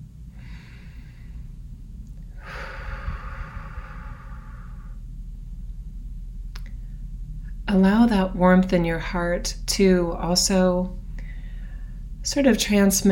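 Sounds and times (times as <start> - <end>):
low steady hum: 0.0 - 13.1
person breathing deeply: 0.3 - 1.7, 2.3 - 5.2, 11.1 - 12.2
speech: 7.7 - 11.0, 12.3 - 13.1.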